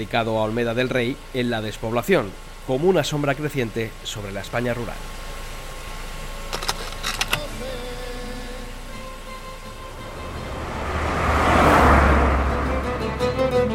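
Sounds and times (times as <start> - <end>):
speech: 0.0 - 5.2
car engine rumbling as the car pulls away from a hotel in Guadix Spain: 0.0 - 13.7
quick metallic clicks and jingles: 6.5 - 7.5.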